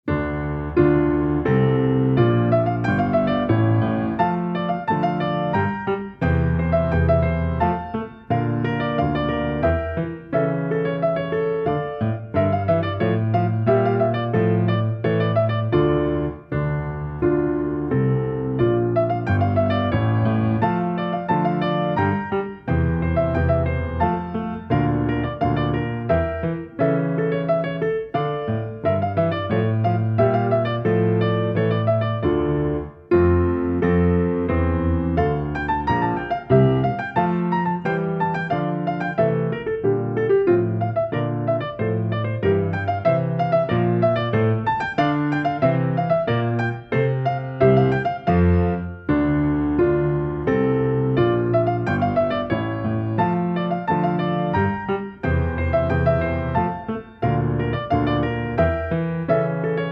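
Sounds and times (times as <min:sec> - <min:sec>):
solo piano rondeau: 0:00.0 - 0:59.8.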